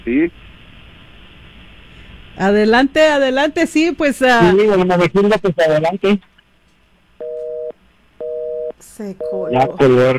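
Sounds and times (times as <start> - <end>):
speech: 0.0 - 0.5, 2.4 - 6.3, 9.0 - 10.1
telephone line tone beeps after a call cuts off: 7.2 - 9.8.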